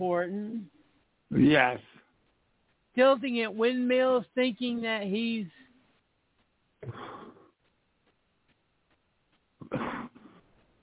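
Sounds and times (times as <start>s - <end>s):
speech: 0.0s - 1.9s, 3.0s - 5.6s
coughing and throat clearing: 6.8s - 7.5s, 9.6s - 10.4s.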